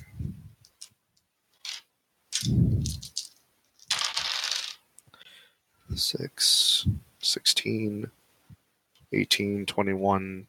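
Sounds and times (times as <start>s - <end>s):
dice rolling on a hard tabletop for a tabletop game: 1.6s - 4.8s
speech: 6.0s - 8.2s, 9.1s - 10.4s.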